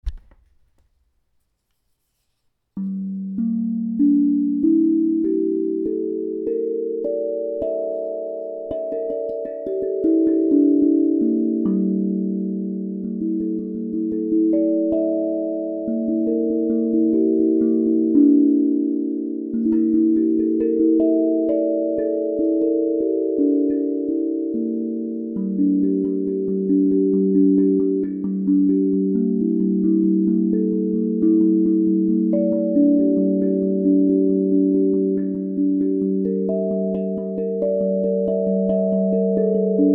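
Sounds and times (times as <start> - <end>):
nine notes of a Gm7 chord tuned to 432 Hz: 1.9 - 39.9.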